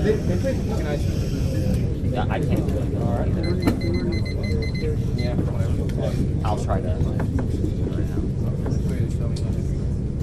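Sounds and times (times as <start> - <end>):
speech: 0.0 - 8.8
murmur of voices: 0.0 - 10.2
short electronic quiz buzzer beeps during buzzer testing: 3.4 - 4.9.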